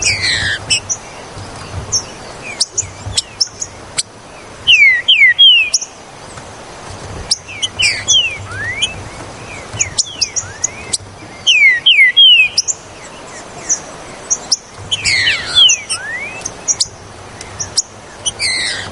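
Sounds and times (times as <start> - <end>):
Green-winged saltator whistling song: 0.0 - 6.0, 7.3 - 18.8.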